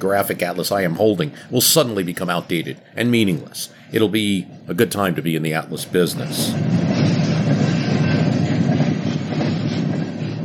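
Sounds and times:
speech: 0.0 - 6.8
cargo train wheels clattering along tracks: 6.3 - 10.4.

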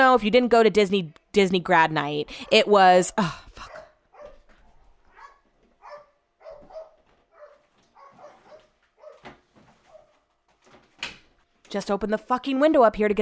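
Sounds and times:
speech: 0.0 - 3.7, 11.7 - 13.1
neighbour's dog barking faintly: 3.6 - 10.2.

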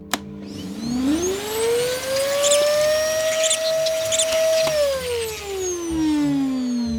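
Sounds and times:
vacuum cleaner motor running: 0.0 - 6.9.

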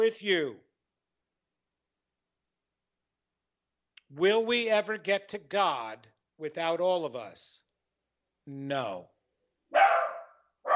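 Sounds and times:
speech: 0.0 - 0.7, 4.1 - 7.6, 8.5 - 9.1
dog barking: 9.7 - 10.7.

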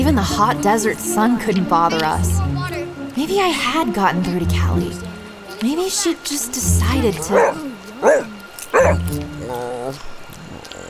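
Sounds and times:
speech: 0.1 - 2.6, 3.2 - 10.2
dog yipping aboard a boat: 7.2 - 9.1
dog whimpering aboard a boat: 7.2 - 10.0.

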